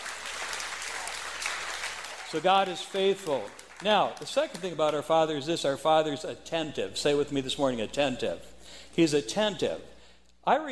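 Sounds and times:
audience applause in praise of God: 0.0s - 4.6s
speech: 2.3s - 10.7s.

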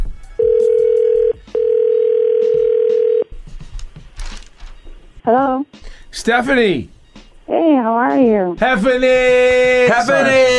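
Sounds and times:
quieter telephone line noise: 0.4s - 3.3s
telephone dial tone while placing a phone call: 0.4s - 3.3s
speech: 5.3s - 7.0s, 7.8s - 10.5s.

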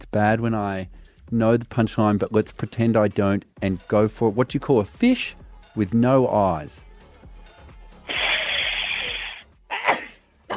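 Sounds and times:
speech: 0.1s - 6.9s
person sneezing: 8.1s - 10.5s.

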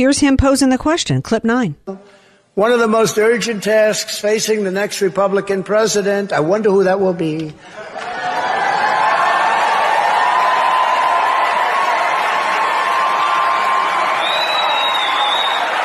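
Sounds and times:
speech: 0.0s - 8.1s
crowd noise: 7.6s - 15.8s
audience clapping at a political speech: 7.9s - 15.8s.

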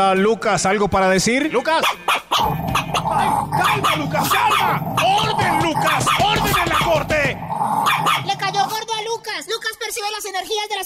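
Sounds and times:
speech: 0.0s - 10.8s
territorial dog barking and growling: 1.8s - 9.2s.

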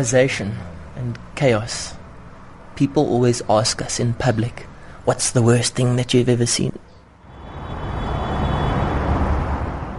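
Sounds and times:
speech: 0.0s - 2.0s, 2.8s - 6.9s
cars speeding on a busy highway: 0.0s - 9.9s.

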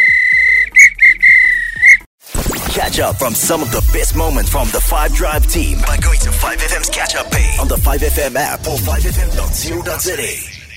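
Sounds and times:
referee whistle blown to end match: 0.0s - 2.0s
speech: 2.8s - 10.5s.

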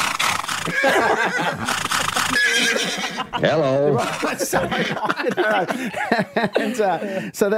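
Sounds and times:
horse neighing with a shaky whinny: 0.0s - 3.3s
laughter: 0.6s - 7.3s
speech: 0.7s - 7.5s.

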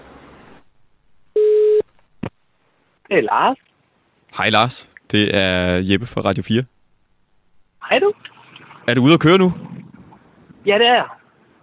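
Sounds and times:
telephone ringing tone of an outgoing call: 1.4s - 1.8s
speech: 3.1s - 3.7s, 4.3s - 6.8s, 7.9s - 9.6s, 10.6s - 11.2s.

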